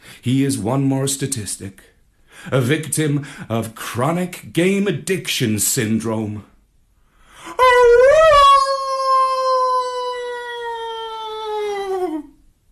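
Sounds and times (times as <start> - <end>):
speech: 0.2 - 6.5
dog howling mournfully in grief: 7.6 - 12.4.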